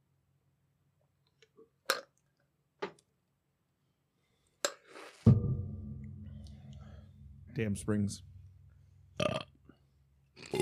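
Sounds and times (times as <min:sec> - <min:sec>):
faint low hum: 0:05.4 - 0:10.4
speech: 0:07.6 - 0:08.3
short throaty burp after drinking a car bomb drink: 0:09.2 - 0:09.7, 0:10.4 - 0:10.5.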